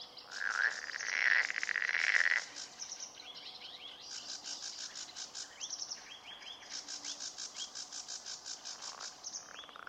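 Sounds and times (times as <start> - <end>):
marsh frog croaking in Turku Finland: 0.3 - 2.7, 7.8 - 9.8.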